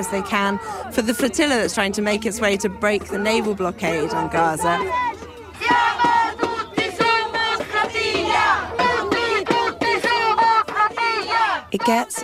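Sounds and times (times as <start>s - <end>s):
speech: 0.0s - 5.8s, 11.7s - 12.2s
crowd chanting on a protest boat on the Tiber river in Rome: 0.0s - 12.2s.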